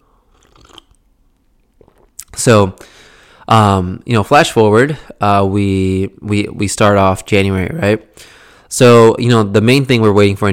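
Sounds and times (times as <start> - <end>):
person sipping tea: 0.3 - 1.0, 1.8 - 2.2
speech: 2.4 - 10.5.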